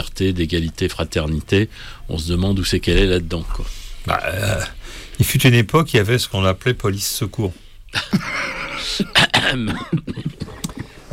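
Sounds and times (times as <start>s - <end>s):
speech: 0.2s - 10.3s
person coughing: 8.0s - 11.0s
throat clearing: 8.3s - 11.0s.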